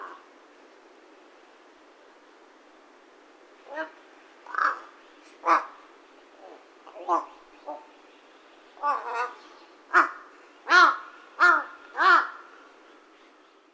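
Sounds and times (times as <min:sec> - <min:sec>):
speech: 0:03.7 - 0:04.0
large-billed crow cawing: 0:04.5 - 0:05.8, 0:08.8 - 0:12.5.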